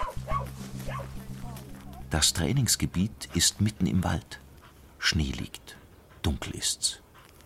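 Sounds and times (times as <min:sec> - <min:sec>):
search dog barking: 0:00.0 - 0:01.2
speech: 0:02.1 - 0:04.4, 0:05.0 - 0:07.0.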